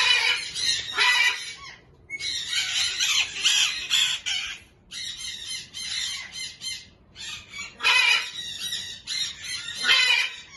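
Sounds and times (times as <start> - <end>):
pair of Major Mitchell's cockatoos screeching: 0.0 - 10.5.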